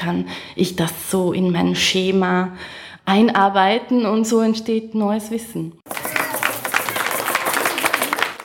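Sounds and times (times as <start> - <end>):
speech: 0.0 - 5.8
parents clapping at a theatre performance for babies: 5.9 - 8.4.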